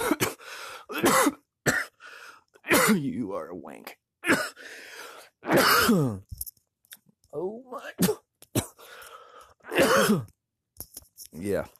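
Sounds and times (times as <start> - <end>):
harsh coughing: 0.0 - 2.0, 2.6 - 3.0, 4.2 - 4.6, 5.4 - 6.3, 7.9 - 9.0, 9.6 - 10.4
raspy breathing: 0.4 - 0.9, 1.9 - 2.5, 4.6 - 5.4, 8.8 - 9.7
speech: 2.9 - 4.6, 5.9 - 6.3.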